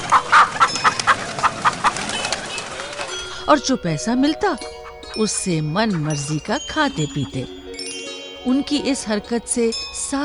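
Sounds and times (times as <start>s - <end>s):
village chickens clucking: 0.0s - 7.8s
speech: 3.5s - 7.6s, 8.4s - 10.2s.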